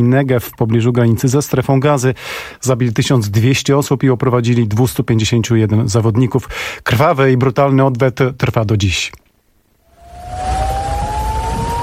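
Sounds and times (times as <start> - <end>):
speech: 0.0 - 9.3
air-raid alarm siren wailing in Israeli cities in the early morning: 9.9 - 11.8
low rumbling background: 9.9 - 11.8.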